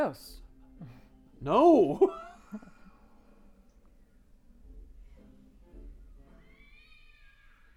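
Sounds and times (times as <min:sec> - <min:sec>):
speech: 0:00.0 - 0:02.7
chorus of cat meows and yowls from a sound effect library: 0:06.4 - 0:07.7.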